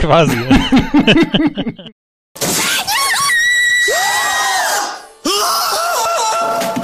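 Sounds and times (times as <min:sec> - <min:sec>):
speech: 0:00.0 - 0:03.0
laughter: 0:00.2 - 0:01.9
man screaming in a high pitch: 0:03.8 - 0:06.8.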